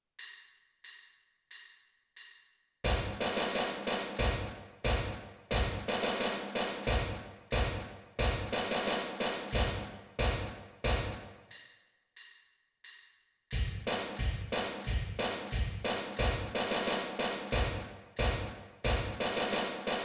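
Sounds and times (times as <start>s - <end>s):
bass drum: 2.9s - 3.4s, 4.2s - 6.0s, 6.9s - 8.7s, 9.5s - 11.2s, 13.5s - 16.8s, 17.5s - 19.3s
snare drum: 2.9s - 11.3s, 13.6s - 20.0s.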